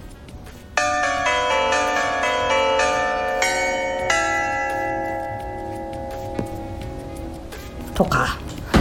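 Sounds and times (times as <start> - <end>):
correct-answer ding-dong chime sound effect: 0.8 - 7.0
speech: 8.0 - 8.4.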